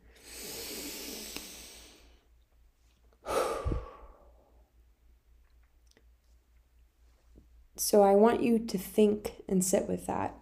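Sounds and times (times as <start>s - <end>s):
deep breath in for a calming exercise: 0.0s - 2.3s, 3.2s - 4.6s
long exhale for a calming exercise: 0.0s - 2.3s, 3.2s - 4.6s
speech: 7.8s - 10.4s.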